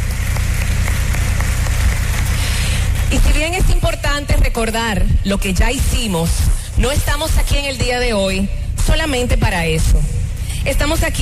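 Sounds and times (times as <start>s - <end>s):
large audience applauding: 0.0s - 3.1s
speech: 3.1s - 11.2s.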